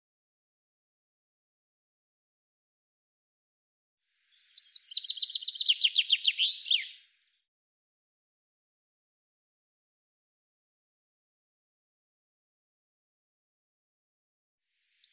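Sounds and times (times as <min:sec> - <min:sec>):
common chaffinch singing: 0:04.2 - 0:07.4, 0:14.7 - 0:15.1.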